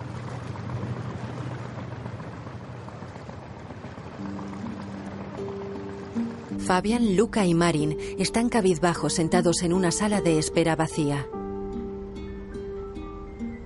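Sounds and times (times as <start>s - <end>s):
motorboat engine passing a small boat on the water at night: 0.0s - 10.5s
speech: 6.6s - 11.4s.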